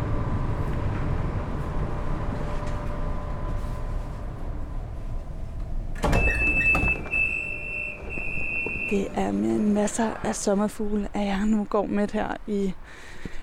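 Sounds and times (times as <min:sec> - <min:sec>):
commuter S-train interior rumble: 0:00.0 - 0:13.4
high sustained electronic door warning tone: 0:06.0 - 0:09.8
speech: 0:08.9 - 0:13.2.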